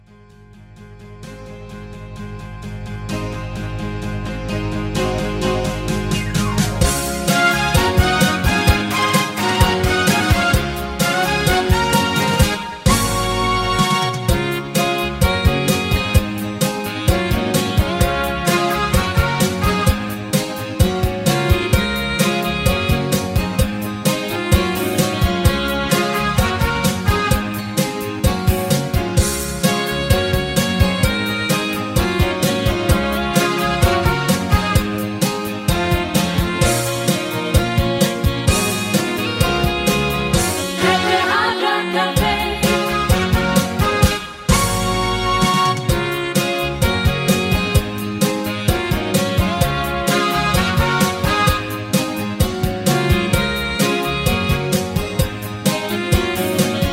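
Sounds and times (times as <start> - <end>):
high key hard rock music: 1.6 - 41.5, 42.2 - 56.9
backing vocals: 40.7 - 43.0.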